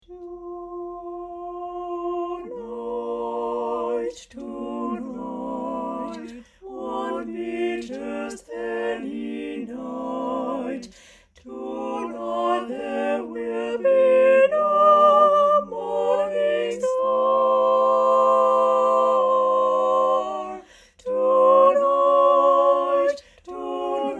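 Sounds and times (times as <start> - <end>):
sopranos singing: 0.0 - 24.1.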